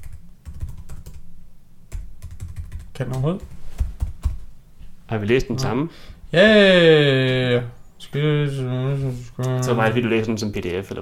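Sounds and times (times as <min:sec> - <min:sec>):
typing on a computer keyboard: 0:00.0 - 0:01.2, 0:01.9 - 0:03.2
low hum: 0:00.0 - 0:10.9
speech: 0:03.0 - 0:03.6, 0:05.1 - 0:10.9.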